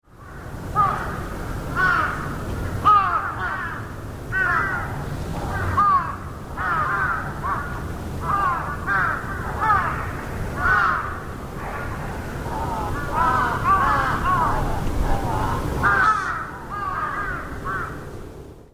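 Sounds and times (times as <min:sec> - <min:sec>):
crows cawing: 0:00.2 - 0:18.1.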